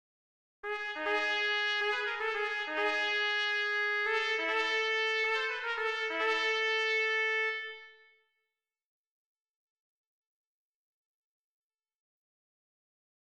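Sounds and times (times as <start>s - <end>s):
open trumpet: 0.6s - 8.1s.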